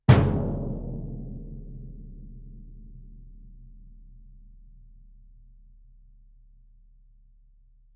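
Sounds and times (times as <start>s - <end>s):
bass drum played fortississimo: 0.0s - 3.7s.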